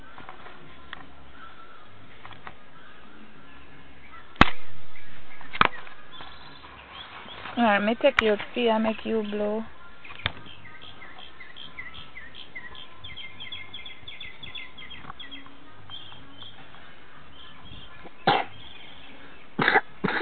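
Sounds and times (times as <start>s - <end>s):
faint high chirping: 0.0s - 7.9s, 8.8s - 19.5s
speech: 7.6s - 9.7s
short sharp coughs: 19.6s - 20.2s.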